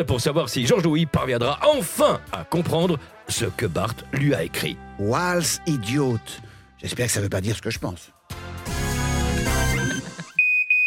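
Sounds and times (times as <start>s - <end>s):
speech: 0.0s - 8.2s
music: 0.0s - 10.4s
fire alarm ringing: 9.7s - 10.8s.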